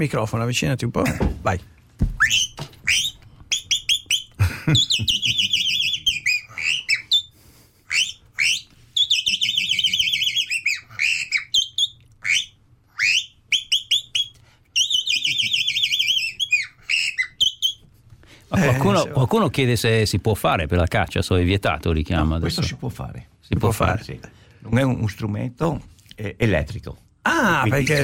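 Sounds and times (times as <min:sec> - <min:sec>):
speech: 0:00.0 - 0:02.6, 0:04.7 - 0:05.6, 0:18.9 - 0:28.0
person whistling chaffinch imitation into a microphone: 0:02.2 - 0:07.3, 0:07.9 - 0:17.8.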